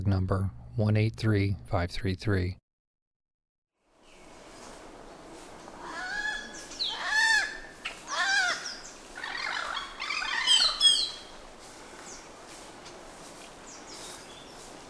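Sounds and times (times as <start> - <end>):
speech: 0.1 - 2.6
bird calls: 4.0 - 14.8.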